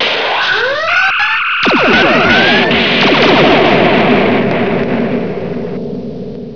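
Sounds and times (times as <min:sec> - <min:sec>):
phaser effect: 0:00.0 - 0:05.8.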